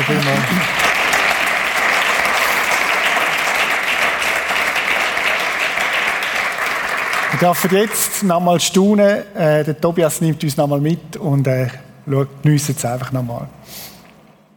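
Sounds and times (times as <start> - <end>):
large audience applause: 0.0 - 8.2
speech: 0.1 - 0.9, 7.4 - 13.9.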